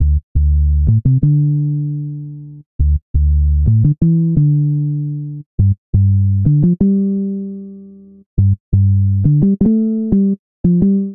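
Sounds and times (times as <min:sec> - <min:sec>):
bassline in D major at 86 bpm: 0:00.0 - 0:11.1.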